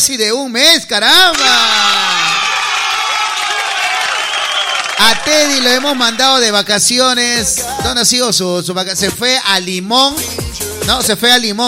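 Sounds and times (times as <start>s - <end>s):
speech: 0.0s - 2.0s, 5.0s - 11.6s
crowd clapping: 1.2s - 6.9s
crowd cheering: 1.2s - 8.1s
whoops and shouts: 1.3s - 5.6s, 7.6s - 8.0s.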